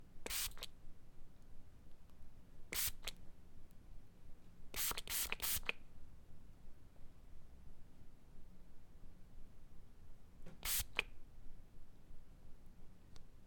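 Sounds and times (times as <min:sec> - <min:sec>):
pump spray: 0:00.3 - 0:00.6, 0:02.8 - 0:03.1, 0:04.8 - 0:05.7, 0:10.6 - 0:11.0.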